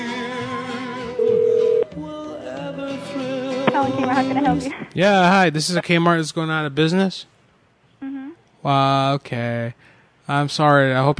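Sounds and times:
telephone keypad tone: 0:01.2 - 0:01.9
speech: 0:03.8 - 0:07.3, 0:08.6 - 0:11.1.

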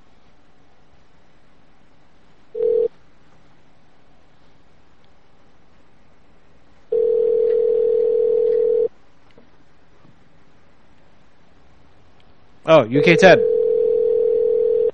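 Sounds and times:
telephone tones as a call is placed to a restaurant: 0:02.6 - 0:02.9, 0:06.9 - 0:08.9, 0:13.0 - 0:14.9
speech: 0:12.7 - 0:13.5.

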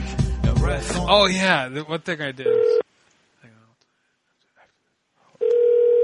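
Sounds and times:
speech: 0:00.8 - 0:02.8
steady mid-pitched electronic telephone ringing tone down a call line: 0:02.5 - 0:02.8, 0:05.4 - 0:06.0
faint click on a telephone call line: 0:05.4 - 0:06.0.

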